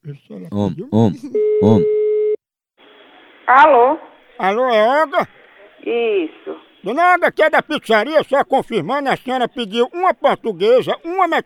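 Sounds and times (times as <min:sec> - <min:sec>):
speech: 0:00.1 - 0:02.0, 0:03.5 - 0:11.4
telephone ringing tone heard while placing a call: 0:01.4 - 0:02.4.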